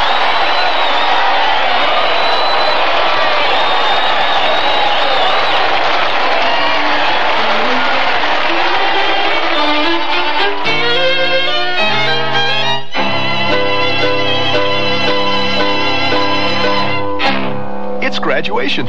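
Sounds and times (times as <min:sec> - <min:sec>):
applause: 0:00.0 - 0:10.8
large crowd cheering and roaring: 0:00.0 - 0:18.8
speech: 0:18.6 - 0:18.8.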